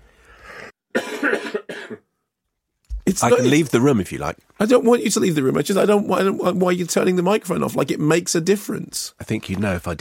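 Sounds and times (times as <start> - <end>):
harsh throaty coughs: 0.9 - 2.1
speech: 3.1 - 9.9.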